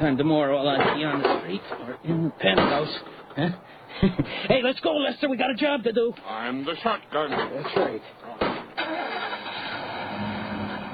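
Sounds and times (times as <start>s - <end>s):
speech: 0.0s - 9.1s
panel truck starting and driving off: 8.7s - 10.9s.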